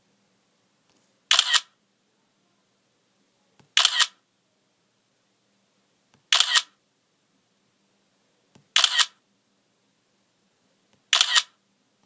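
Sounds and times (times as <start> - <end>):
iPhone camera shutter sound: 1.3 - 1.8, 3.7 - 4.2, 6.3 - 6.8, 8.7 - 9.2, 11.1 - 11.6.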